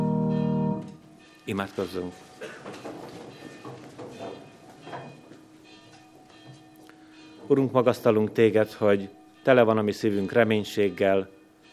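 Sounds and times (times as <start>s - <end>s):
church bells ringing: 0.0s - 11.7s
speech: 1.5s - 3.0s, 7.5s - 11.4s.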